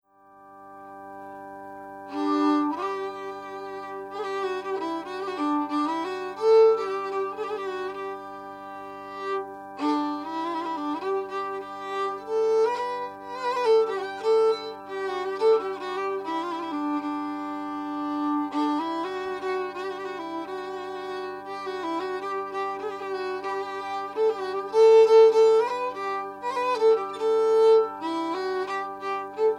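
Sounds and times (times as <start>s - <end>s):
improvised music: 0.5s - 29.5s.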